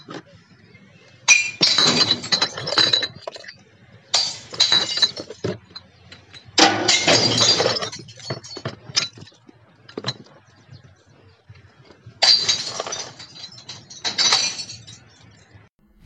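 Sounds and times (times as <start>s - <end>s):
glass beer bottles dropped into deep underground recycling bin: 1.3s - 9.4s, 12.2s - 15.5s.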